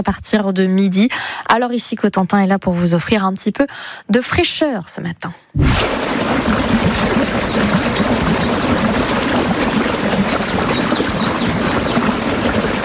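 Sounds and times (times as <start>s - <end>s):
speech: 0.0s - 7.4s
waterfall roaring: 5.8s - 12.8s
faint birdsong: 6.5s - 12.8s.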